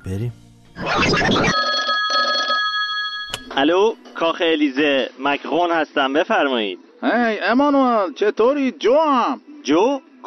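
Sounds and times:
speech: 0.0 - 1.6, 3.6 - 10.2
electronic telephone ring in a comedy skit: 1.5 - 3.8.

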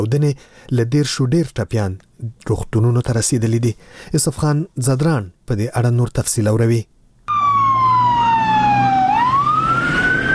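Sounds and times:
speech: 0.0 - 6.9
emergency siren wailing at a suicide bombing site near Kabul's international airport: 7.3 - 10.3.

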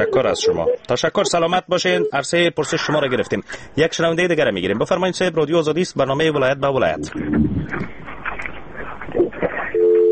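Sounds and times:
phone line busy tone after a call drops: 0.0 - 1.4, 9.8 - 10.1
speech: 0.0 - 8.0.

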